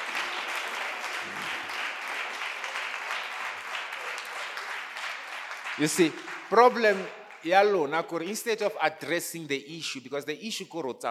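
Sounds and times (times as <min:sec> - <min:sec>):
many hands clapping in praise: 0:00.0 - 0:08.6
speech: 0:05.8 - 0:11.0.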